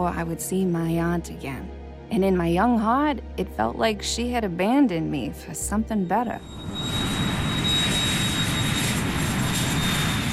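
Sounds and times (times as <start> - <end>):
speech: 0.0 - 7.1
jet airplane roaring overhead: 6.4 - 10.3.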